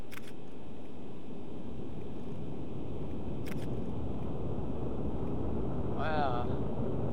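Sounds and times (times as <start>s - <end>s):
camera shutter clicks: 0.0s - 0.5s, 3.4s - 3.8s
rocket engine roaring during launch: 1.2s - 7.1s.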